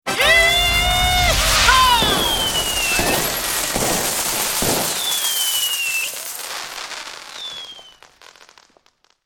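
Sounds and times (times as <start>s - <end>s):
fanfare: 0.0s - 6.8s
man shouting: 0.1s - 3.2s
crowd shouting: 0.1s - 6.6s
fireworks: 0.1s - 9.2s.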